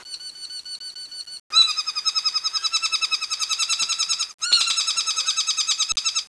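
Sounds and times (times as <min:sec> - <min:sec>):
saddleback birds: 0:01.5 - 0:06.3.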